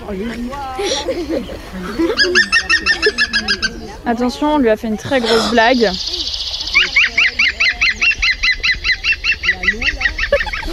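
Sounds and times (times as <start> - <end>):
laughter: 0.0 - 10.7
speech: 0.1 - 6.2
woodpecker laughing call played from a portable loudspeaker in a park: 2.1 - 3.9, 5.8 - 10.7.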